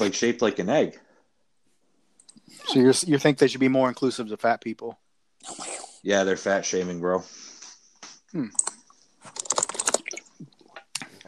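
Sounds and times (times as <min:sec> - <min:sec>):
speech: 0:00.0 - 0:01.0, 0:02.5 - 0:07.4, 0:08.3 - 0:09.4
typing on a computer keyboard: 0:08.5 - 0:10.2.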